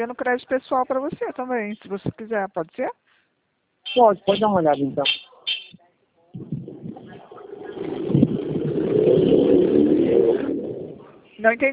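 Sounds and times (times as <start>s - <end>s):
speech: 0.0s - 3.1s, 3.9s - 5.3s, 11.4s - 11.7s
voices: 4.3s - 8.4s
motorcycle engine passing by: 6.5s - 11.2s.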